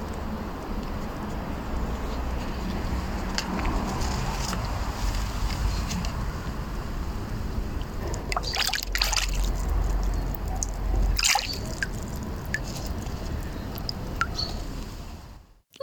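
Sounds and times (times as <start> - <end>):
pond water trickling and sloshing: 0.0 - 15.5
faint rumble of cars in an urban setting: 0.0 - 15.7
stick flicked into a pond splashing: 8.2 - 14.5.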